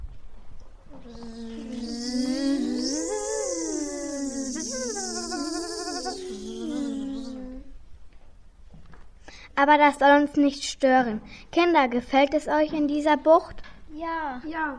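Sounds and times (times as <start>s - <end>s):
mosquito buzzing: 1.0s - 7.7s
speech: 9.6s - 14.7s.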